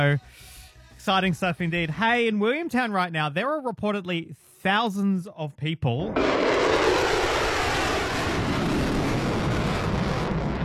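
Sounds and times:
speech: 0.0s - 6.4s
military jet flying overhead during an air exercise: 6.1s - 10.6s.

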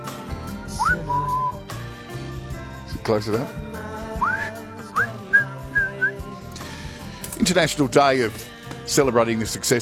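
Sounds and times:
music: 0.0s - 9.7s
person whistling a short tune: 0.5s - 1.7s, 4.2s - 6.3s
speech: 3.1s - 3.7s, 7.4s - 9.7s.

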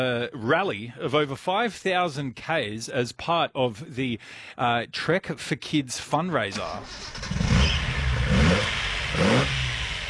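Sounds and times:
speech: 0.0s - 7.8s
Datsun car engine revving: 6.6s - 10.0s.

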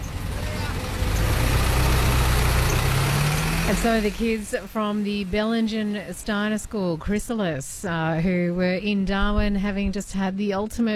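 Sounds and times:
bus engine rumbling as the bus pulls away: 0.0s - 10.4s
faint noise: 3.7s - 10.9s
speech: 3.7s - 10.9s.

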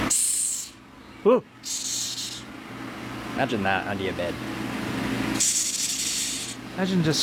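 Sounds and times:
Madagascar hissing cockroach hissing on the radio: 0.1s - 0.8s, 1.7s - 2.5s, 5.3s - 6.6s
speech: 1.3s - 2.0s, 3.4s - 4.8s, 6.8s - 7.2s.

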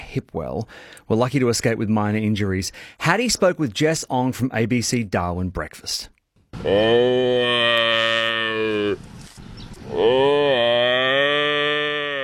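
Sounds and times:
speech: 0.1s - 9.1s
water buffalo bellowing: 6.6s - 9.0s, 9.8s - 12.2s.

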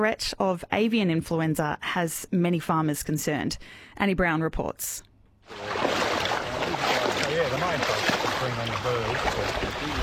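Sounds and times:
speech: 0.0s - 6.0s
legs wading through knee-deep wetland water: 5.5s - 10.0s.

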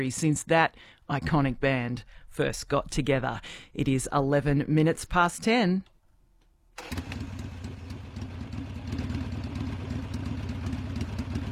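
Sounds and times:
speech: 0.0s - 5.9s, 6.8s - 7.1s
Harley-Davidson motorcycle engine revving and taking off: 6.8s - 11.5s.

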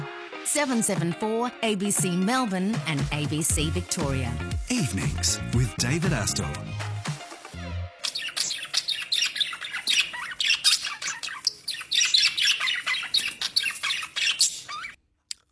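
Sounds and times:
speech: 0.5s - 6.9s
flock of parrots squawking: 8.0s - 15.0s.

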